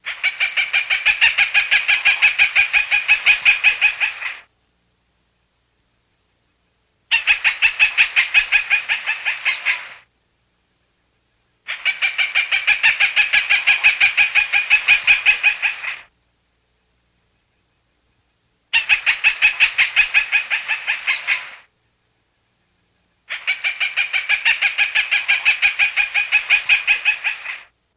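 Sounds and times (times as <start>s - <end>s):
bird calling in a jungle: 0.0s - 4.5s, 7.1s - 10.1s, 11.6s - 16.1s, 17.4s - 21.7s, 23.0s - 27.7s.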